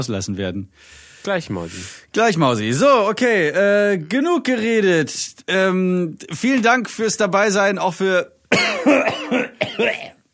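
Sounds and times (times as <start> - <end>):
speech: 0.0 - 10.2
person coughing harshly: 8.5 - 10.2.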